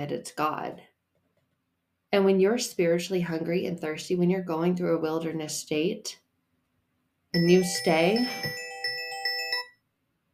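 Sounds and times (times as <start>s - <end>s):
speech: 0.0s - 0.9s, 2.1s - 6.2s, 7.3s - 8.6s
phone ringtone chiming a short melodic phrase: 7.4s - 9.8s.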